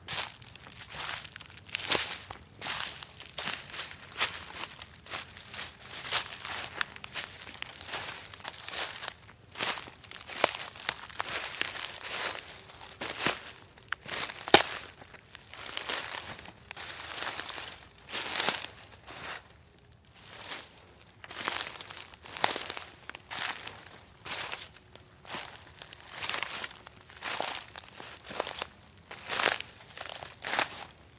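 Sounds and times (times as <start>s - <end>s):
footsteps on leaves: 0.0s - 31.1s.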